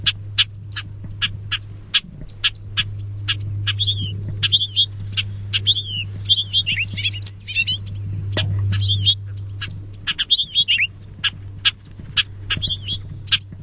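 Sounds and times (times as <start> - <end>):
bobolink short clipped call notes: 0.0 - 13.5
constant low hum: 0.0 - 13.6
bobolink bubbly jangling song phrases: 2.9 - 8.0, 8.6 - 10.9.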